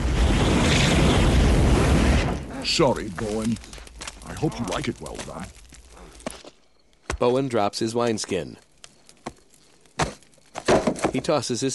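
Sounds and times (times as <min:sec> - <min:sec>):
roaring flame blasting from a dragon's nostril: 0:00.0 - 0:06.3
speech: 0:02.8 - 0:05.6, 0:07.2 - 0:08.6, 0:11.1 - 0:11.7.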